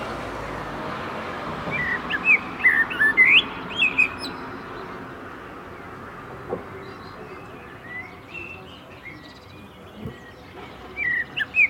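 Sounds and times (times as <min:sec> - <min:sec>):
common blackbird Turdus merula giving mellow whistled and warbled notes: 0:01.7 - 0:04.4, 0:11.0 - 0:11.6.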